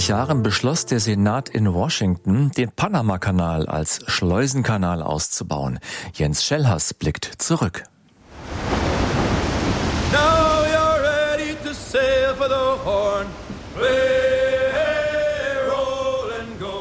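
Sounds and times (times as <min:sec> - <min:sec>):
speech: 0:00.0 - 0:07.9
ocean surf roaring: 0:08.2 - 0:16.7
loud steady rush of wind: 0:08.3 - 0:16.7.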